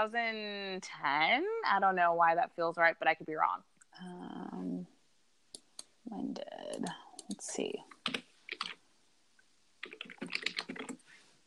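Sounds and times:
speech: 0.0 - 4.7, 6.1 - 8.3
typing on a computer keyboard: 6.7 - 8.8, 9.8 - 11.0.

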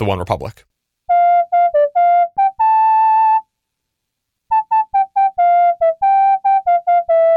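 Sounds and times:
speech: 0.0 - 0.7
MIDI synthesized whistle playing a melody: 1.1 - 3.5, 4.5 - 7.3.

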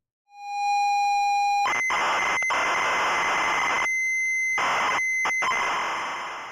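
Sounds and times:
modulated audio tones encoding a computer program on a 45 record: 1.4 - 6.5.

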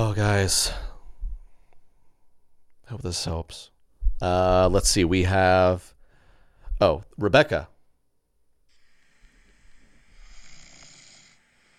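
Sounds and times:
speech: 0.0 - 0.8, 2.9 - 6.0, 6.8 - 7.7
husband snoring: 8.7 - 11.7.

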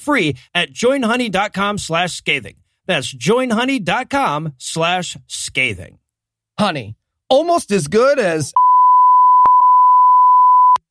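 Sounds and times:
speech: 0.0 - 6.0, 6.6 - 8.6
steady high-pitched censor bleep tone: 8.6 - 10.8.

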